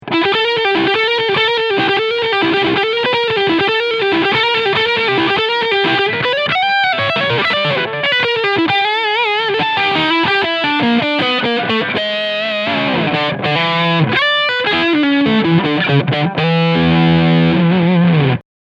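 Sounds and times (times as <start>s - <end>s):
Harley Benton SC 550 SL guitar through Leadsound bridge pickup: 0.0s - 18.4s.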